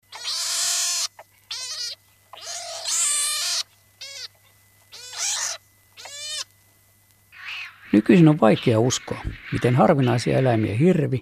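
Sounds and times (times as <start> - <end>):
Pine marten harsh squealing calls: 0.0 - 6.5, 7.3 - 11.1
speech: 7.9 - 11.2.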